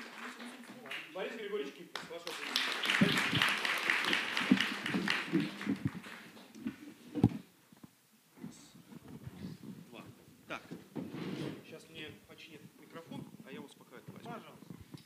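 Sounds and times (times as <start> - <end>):
audience applause with many hands clapping: 0.0 - 6.8.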